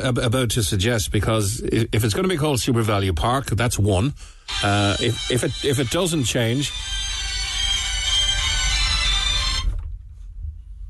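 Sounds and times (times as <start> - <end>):
speech: 0.0 - 7.0
low room rumble: 0.0 - 10.8
mobile phone ringtone ringing in studio: 4.5 - 9.7.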